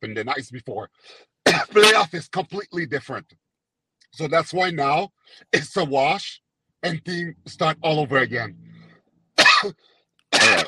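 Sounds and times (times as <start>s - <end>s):
speech: 0.0s - 3.4s, 4.1s - 8.7s, 9.6s - 10.6s
sharp raspy coughs: 1.5s - 2.1s, 9.4s - 10.6s.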